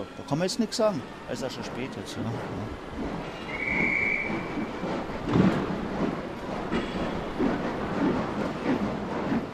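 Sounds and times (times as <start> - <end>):
train rolling into a station: 0.0 - 9.5
speech: 0.3 - 4.0
brief high squeal or whistle: 3.4 - 4.5.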